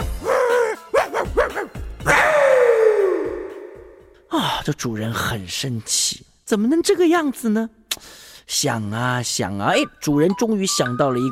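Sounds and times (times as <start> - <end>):
dog barking: 0.2 - 2.4
speech: 4.7 - 11.2.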